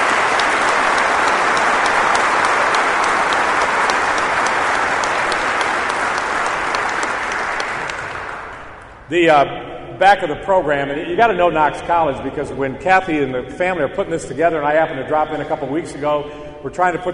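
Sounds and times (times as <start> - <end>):
sizable crowd applauding: 0.0 - 9.0
speech: 9.1 - 17.1.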